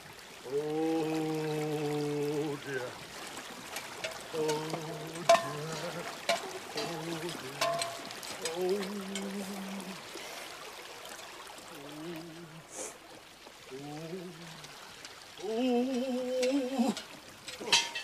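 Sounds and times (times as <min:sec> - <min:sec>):
shallow stream water trickling and splashing during crossing: 0:00.0 - 0:18.0
voice making wordless vocal sounds: 0:00.4 - 0:03.0, 0:04.3 - 0:10.2, 0:13.7 - 0:18.0.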